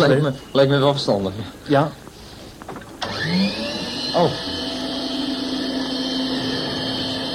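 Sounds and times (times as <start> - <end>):
speech: 0.0 - 2.0, 3.2 - 4.6
converted household vacuum cleaner running without its bottle: 3.0 - 7.3.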